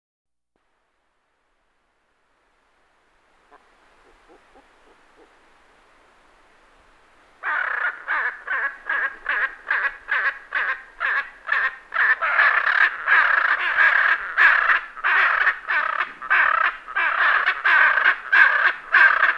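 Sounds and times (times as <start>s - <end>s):
hyacinth macaw loud harsh squawks: 3.5s - 5.3s, 7.4s - 19.3s.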